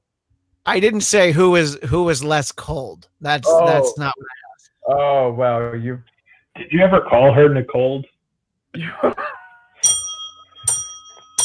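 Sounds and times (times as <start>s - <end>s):
speech: 0.7s - 8.1s, 8.7s - 9.2s
small bell struck: 9.8s - 11.4s.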